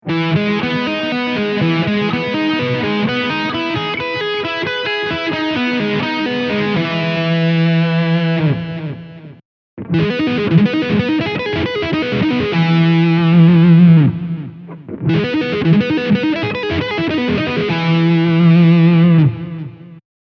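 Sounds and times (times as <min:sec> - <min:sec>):
guitar arpeggio on E: 0:00.0 - 0:20.0.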